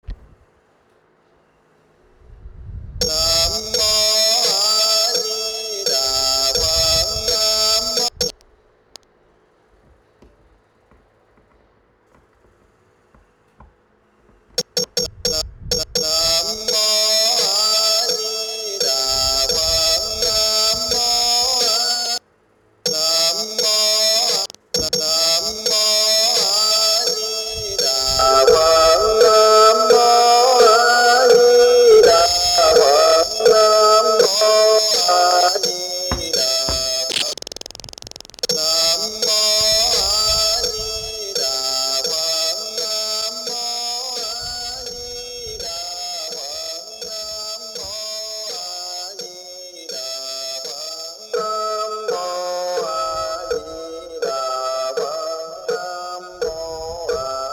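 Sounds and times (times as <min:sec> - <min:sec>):
distorted electronic chant: 0:03.0 - 0:08.3, 0:14.6 - 0:22.2, 0:22.9 - 0:57.5.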